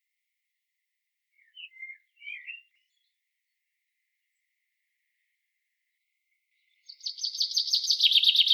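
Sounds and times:
common chaffinch Fringilla coelebs singing: 1.3s - 3.2s, 6.5s - 8.5s.

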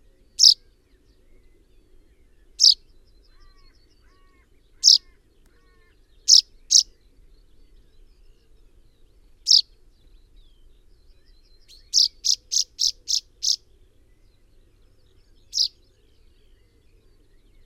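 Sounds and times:
common chaffinch Fringilla coelebs calling: 0.4s - 0.6s, 2.6s - 2.8s, 4.8s - 5.1s, 6.3s - 6.9s, 9.4s - 9.7s, 11.8s - 13.6s, 15.4s - 15.8s.

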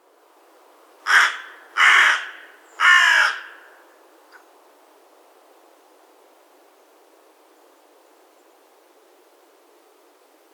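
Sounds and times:
Carrion crow Corvus corone calling with rasping caws: 1.1s - 4.4s.

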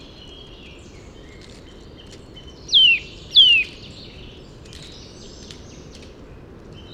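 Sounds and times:
Eurasian nuthatch Sitta europaea giving descending whistled calls: 2.7s - 3.9s.

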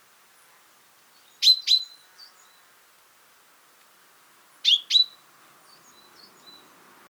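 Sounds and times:
common chaffinch Fringilla coelebs giving sharp high double calls: 4.6s - 5.2s.

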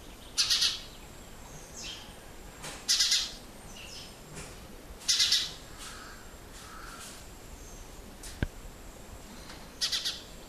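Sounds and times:
house sparrow (Passer domesticus) chirping: 0.0s - 2.1s, 2.9s - 4.2s, 5.1s - 5.6s, 9.8s - 10.4s.

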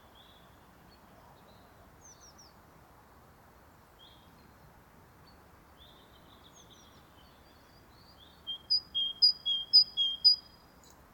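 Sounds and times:
great tit Parus major singing: 8.5s - 10.5s.

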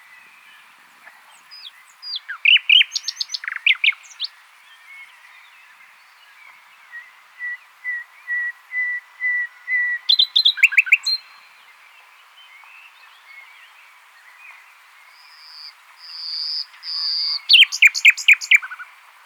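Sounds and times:
common nightingale Luscinia megarhynchos singing: 1.1s - 5.1s, 6.8s - 11.5s, 15.1s - 19.0s.

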